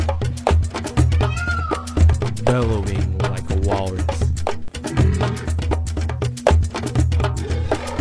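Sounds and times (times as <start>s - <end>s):
steady thumping beat: 0.0s - 7.9s
child imitating a peacock yelping: 1.0s - 2.1s
speech: 2.5s - 4.2s.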